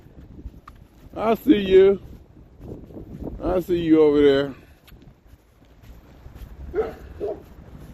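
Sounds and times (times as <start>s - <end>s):
speech: 1.2s - 2.1s, 3.4s - 4.6s
dog barking in the distance: 6.7s - 7.5s.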